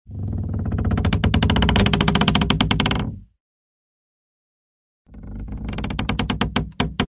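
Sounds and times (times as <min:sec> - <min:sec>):
wood creaking under pressure: 0:00.1 - 0:03.2, 0:05.1 - 0:07.1.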